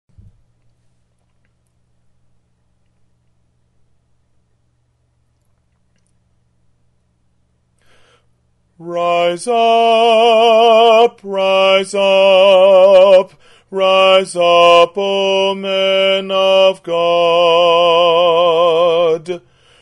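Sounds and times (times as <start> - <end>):
baritone singing: 8.8 - 19.5.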